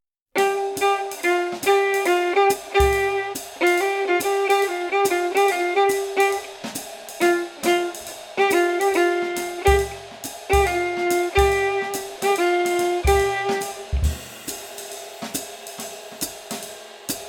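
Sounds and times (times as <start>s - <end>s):
jazz violin playing swing phrasing exercise with play-along: 0.4s - 6.6s, 7.2s - 14.2s.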